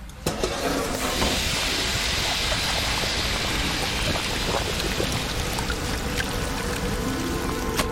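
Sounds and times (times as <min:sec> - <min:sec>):
soft hiss of steam from pot: 0:00.3 - 0:07.8
pot of mianfeizi stewing with bubbling: 0:00.4 - 0:07.8.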